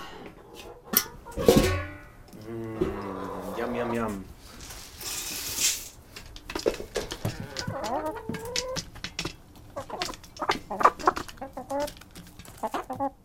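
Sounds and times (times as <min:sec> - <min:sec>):
hungry backyard hens clucking and squawking at feeding time: 0:00.0 - 0:04.7, 0:06.0 - 0:13.2
rustling noise: 0:03.0 - 0:13.0.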